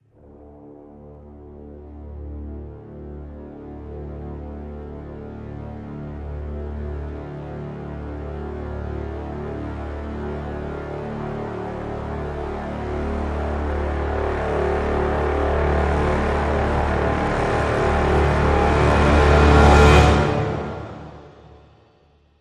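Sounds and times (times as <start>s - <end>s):
low brass swell in D: 0.1s - 21.8s.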